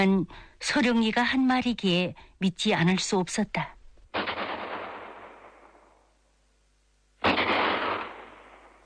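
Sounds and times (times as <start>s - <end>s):
speech: 0.0s - 3.8s
gunshots fired as an air raid warning across open hills: 4.1s - 6.1s, 7.2s - 8.8s.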